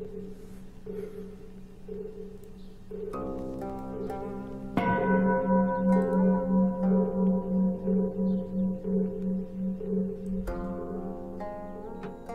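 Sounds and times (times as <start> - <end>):
temple bell struck with a bright ringing tone: 4.8 - 11.5.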